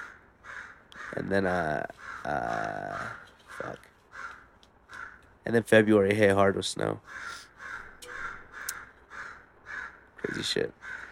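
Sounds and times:
crow cawing: 0.0 - 1.3, 2.0 - 5.3, 7.0 - 10.1, 10.8 - 11.1
speech: 1.1 - 3.9, 5.4 - 7.4, 10.2 - 11.0.

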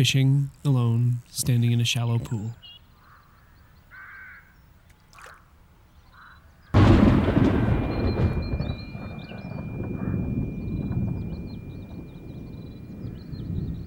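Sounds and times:
speech: 0.0 - 2.7
faint birds chirping: 0.0 - 13.8
lightning crack: 6.8 - 13.8
thunder rumbling heavily: 6.8 - 13.8.

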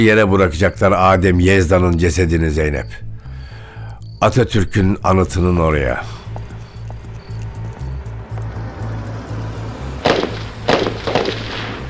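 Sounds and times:
speech: 0.0 - 3.0, 4.2 - 6.2
low engine rumble: 0.0 - 11.8
gunshots: 10.0 - 11.8.

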